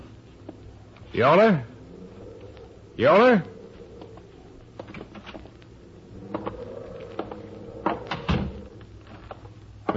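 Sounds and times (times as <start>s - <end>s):
faint hum: 0.0s - 9.9s
speech: 1.1s - 1.7s, 3.0s - 3.5s
wooden front door of a house creaking as it is pushed open: 6.2s - 8.8s.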